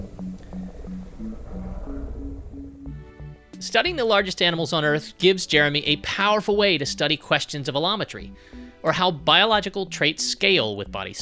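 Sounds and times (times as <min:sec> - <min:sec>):
blue whale low-frequency pulses sped up: 0:00.0 - 0:03.6
deep rumbling background: 0:00.0 - 0:04.0
speech: 0:03.6 - 0:11.2.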